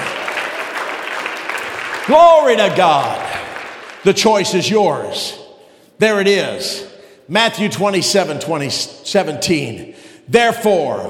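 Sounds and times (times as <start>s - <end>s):
congregation clapping hands: 0.0s - 5.3s
speech: 2.1s - 3.2s, 4.0s - 5.4s, 6.0s - 11.0s.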